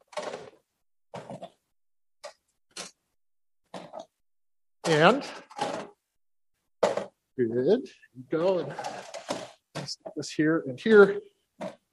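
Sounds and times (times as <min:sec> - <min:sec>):
chairs dragged and set down: 0:00.0 - 0:01.6, 0:03.7 - 0:04.2, 0:04.9 - 0:06.0, 0:06.8 - 0:07.2, 0:08.5 - 0:10.2, 0:11.6 - 0:11.9
speech: 0:04.9 - 0:05.4, 0:07.4 - 0:08.9, 0:09.8 - 0:11.3.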